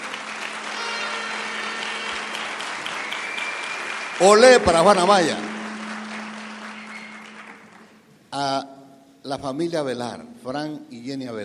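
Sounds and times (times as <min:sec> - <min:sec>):
applause from a sizable audience: 0:00.0 - 0:08.0
speech: 0:04.2 - 0:05.5, 0:08.3 - 0:11.4.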